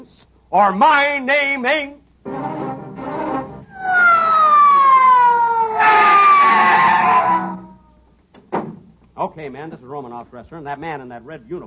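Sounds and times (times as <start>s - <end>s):
speech: 0.5s - 2.0s, 9.4s - 11.6s
police squad car siren wailing: 3.7s - 7.8s.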